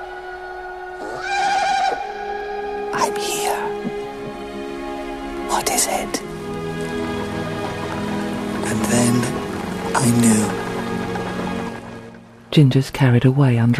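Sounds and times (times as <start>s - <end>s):
water dripping: 2.4s - 12.5s
steady rain falling on a surface: 2.7s - 13.4s
speech: 10.0s - 10.6s, 12.5s - 13.7s.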